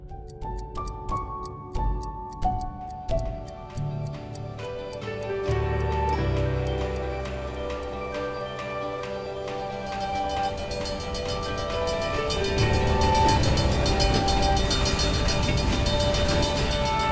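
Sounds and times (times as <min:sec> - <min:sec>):
clock ticking: 0:00.0 - 0:08.0
soft sustained musical tones: 0:00.0 - 0:17.0
railroad cars clacking over the rails: 0:04.6 - 0:17.0
train with railroad cars rumbling past: 0:08.5 - 0:17.0.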